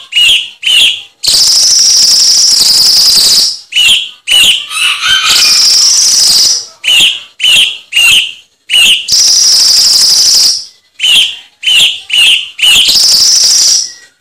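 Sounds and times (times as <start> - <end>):
cucak cungkok tutor song chirping: 0.0 - 14.2.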